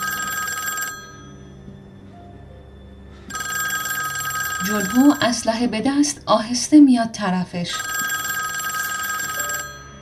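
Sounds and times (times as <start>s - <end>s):
lobby telephone ringing in bright trilling bursts: 0.0s - 1.4s, 3.3s - 5.4s, 7.7s - 10.0s
quiet hum: 0.0s - 10.0s
speech: 4.6s - 7.9s.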